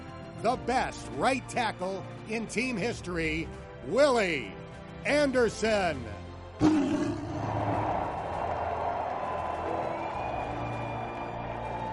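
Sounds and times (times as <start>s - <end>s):
speech: 0.4s - 6.8s
sharp growling blast: 6.6s - 7.7s
stadium crowd roaring and cheering: 6.6s - 11.9s.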